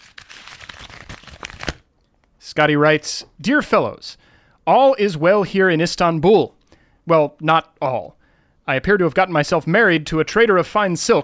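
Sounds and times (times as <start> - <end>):
crumpled paper being unfolded and handled: 0.0 - 1.9
speech: 2.5 - 11.2.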